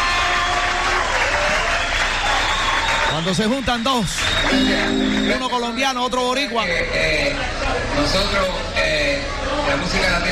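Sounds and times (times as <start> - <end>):
loud dense crowd applause: 0.0 - 5.9
speech: 3.2 - 10.3.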